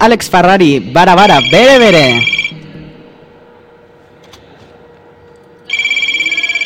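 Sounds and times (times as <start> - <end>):
speech: 0.0 - 2.4
telephone ringing during a radio show: 1.2 - 2.5, 5.7 - 6.6.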